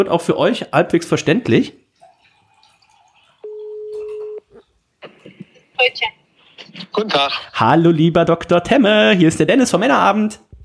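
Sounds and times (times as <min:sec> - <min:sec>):
speech: 0:00.0 - 0:01.8, 0:05.8 - 0:10.4
steady flat telephone ringback tone: 0:03.4 - 0:04.5.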